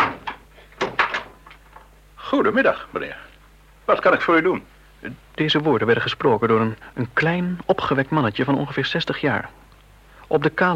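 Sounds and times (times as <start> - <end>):
front door being opened: 0.0 - 1.5
speech: 2.3 - 3.3, 3.9 - 9.6, 10.3 - 10.7.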